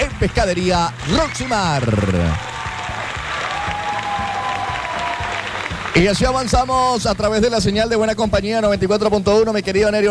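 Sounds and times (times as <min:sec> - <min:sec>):
crowd applauding: 0:00.0 - 0:06.7
speech: 0:00.2 - 0:02.5, 0:06.0 - 0:10.0.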